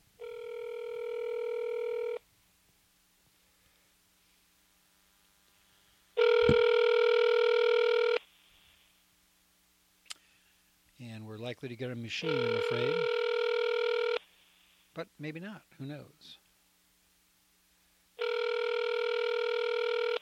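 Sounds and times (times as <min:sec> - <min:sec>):
outgoing phone call electronic ringing tone: 0:00.2 - 0:02.2, 0:06.2 - 0:08.2, 0:12.2 - 0:14.2, 0:18.2 - 0:20.2
speech: 0:11.6 - 0:13.2, 0:15.0 - 0:16.4.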